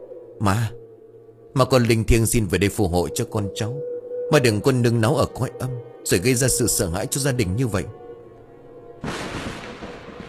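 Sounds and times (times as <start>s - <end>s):
speech: 0.4s - 0.8s, 1.5s - 8.0s
lightning strike hitting a house altar with an explosion: 9.0s - 10.2s.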